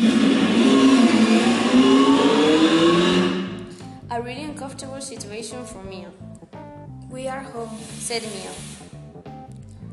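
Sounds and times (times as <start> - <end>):
car engine droning as the car is driven home: 0.0 - 3.9
speech: 4.8 - 8.8.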